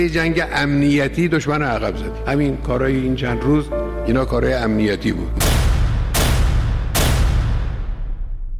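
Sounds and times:
speech: 0.0 - 5.7
loud gunshots between buildings: 5.4 - 8.5.

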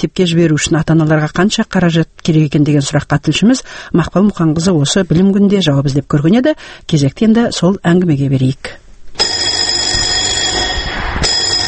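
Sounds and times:
speech: 0.0 - 8.8
school bell ringing on the first day of school in Almaty: 9.2 - 11.6.

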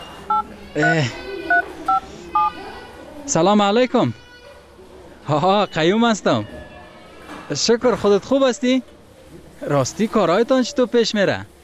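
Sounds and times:
telephone keypad tones while dialing a number: 0.0 - 2.5
speech: 0.7 - 1.2, 3.3 - 4.2, 5.3 - 6.6, 7.5 - 8.9, 9.6 - 11.5.

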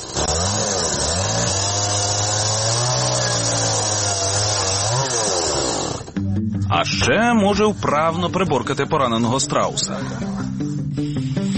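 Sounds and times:
chainsaw engine revving: 0.0 - 6.2
speech: 6.8 - 10.7.

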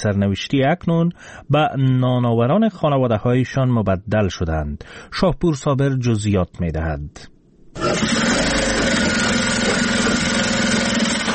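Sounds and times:
speech: 0.0 - 8.6
electric sewing machines whirring in a workshop: 7.8 - 11.3.

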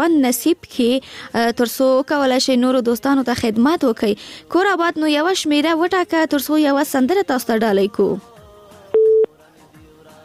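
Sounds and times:
speech: 0.0 - 8.3
busy-signal beep on a telephone line after a dropped call: 9.0 - 9.3.

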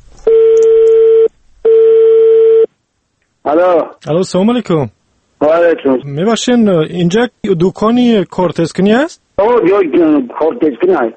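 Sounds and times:
telephone ringing with electronic tones: 0.2 - 2.7
speech: 3.5 - 11.1.

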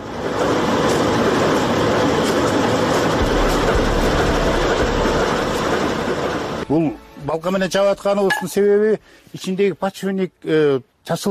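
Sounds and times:
faint rhythmic clatter of train wheels: 0.0 - 7.6
trains arriving at a railway station: 0.0 - 8.3
speech: 6.7 - 11.2.

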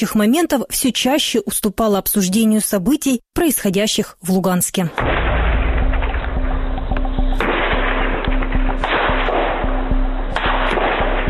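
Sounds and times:
speech: 0.0 - 5.4
gunshots: 5.0 - 11.2.

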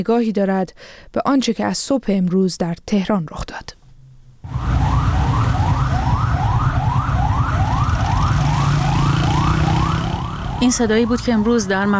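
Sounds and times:
speech: 0.0 - 3.8, 10.6 - 11.9
deep rumble of engines and traffic: 4.4 - 11.9
fire engine siren wailing: 4.5 - 11.1.

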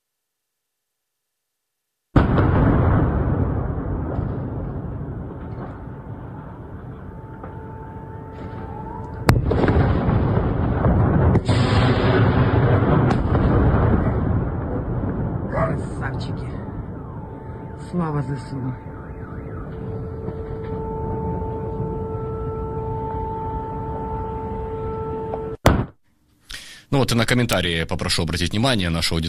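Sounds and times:
heavy continuous rumble of explosions in Nova Kakhovka: 2.1 - 26.0
sharp loud blasts: 2.2 - 24.3, 25.5 - 26.0
speech: 18.0 - 18.9, 27.0 - 29.2.

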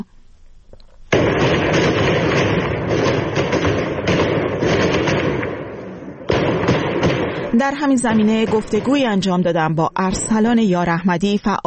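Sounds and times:
gunfire from security forces at protesters: 1.1 - 9.7
speech: 7.6 - 11.6.

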